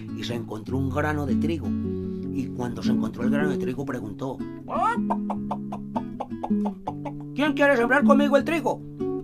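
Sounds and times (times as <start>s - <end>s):
speech: 0.0s - 5.4s, 6.5s - 8.9s
hen clucking: 4.7s - 7.4s.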